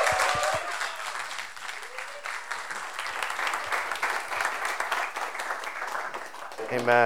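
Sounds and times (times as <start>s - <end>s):
faint cheers or voices: 0.0s - 3.9s
large church audience applauding: 0.0s - 7.0s
speech: 6.7s - 7.0s.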